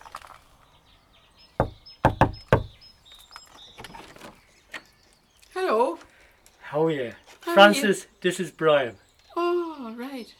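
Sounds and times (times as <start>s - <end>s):
sharp knocks on the front door of a home: 1.6s - 2.8s
speech: 6.8s - 9.0s.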